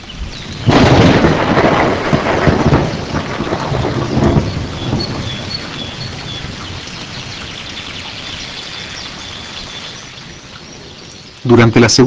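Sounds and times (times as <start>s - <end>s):
heavy pouring rain: 0.0s - 12.0s
thunder crack and rumble: 0.3s - 7.0s
speech: 11.5s - 12.0s.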